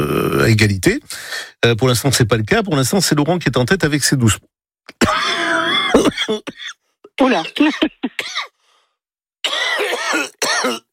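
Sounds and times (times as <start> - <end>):
speech: 0.4 - 5.1, 6.3 - 8.5, 9.4 - 10.8
man coughing with harsh rasping hacks: 4.9 - 8.6, 9.4 - 10.9.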